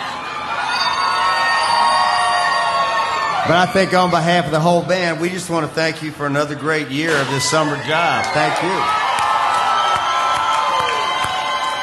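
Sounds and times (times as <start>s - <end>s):
crowd cheering and whooping: 0.0s - 4.6s, 7.1s - 11.8s
speech: 3.5s - 9.0s.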